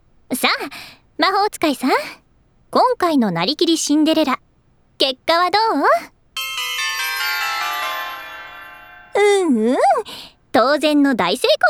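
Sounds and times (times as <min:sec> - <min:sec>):
speech: 0:00.4 - 0:06.1, 0:09.2 - 0:11.6
bright bell-like ding-dong correct-answer chime from a game: 0:06.4 - 0:09.4.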